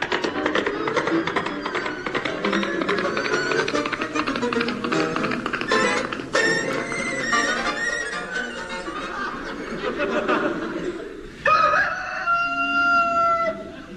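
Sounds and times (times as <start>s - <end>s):
laughter: 0.0s - 11.8s, 13.4s - 13.9s
cockerel crowing: 11.4s - 13.8s.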